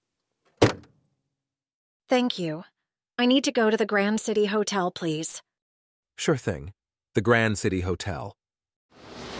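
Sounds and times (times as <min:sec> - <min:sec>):
car trunk being opened: 0:00.6 - 0:00.9
speech: 0:02.1 - 0:05.5, 0:06.2 - 0:08.4.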